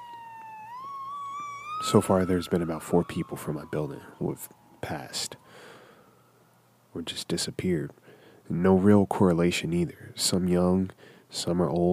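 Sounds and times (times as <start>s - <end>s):
emergency siren wailing outside a residential building: 0.0s - 5.6s
speech: 1.8s - 5.7s, 6.9s - 11.9s.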